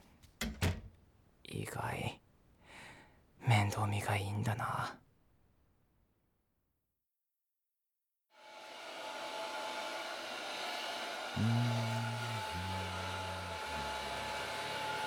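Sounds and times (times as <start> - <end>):
speech: 1.6 - 2.2, 3.5 - 5.0
hair dryer blowing while drying hair: 8.4 - 15.0.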